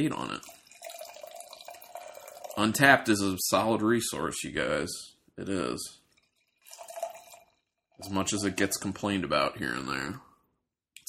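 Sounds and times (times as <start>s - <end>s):
speech: 0.0s - 0.6s, 2.6s - 6.0s, 8.0s - 10.3s
Double Naked Fish beer pouring into a glass: 0.0s - 3.3s, 6.1s - 9.2s.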